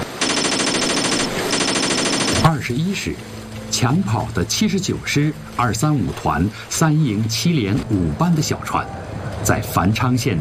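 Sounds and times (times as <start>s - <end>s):
machine gun and rifle fire: 0.2s - 2.5s
speech: 3.0s - 10.3s.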